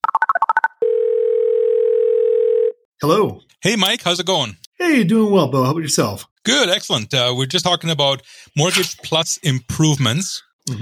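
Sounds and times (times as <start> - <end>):
telephone dial tone: 0.8 - 2.8
speech: 3.0 - 10.7.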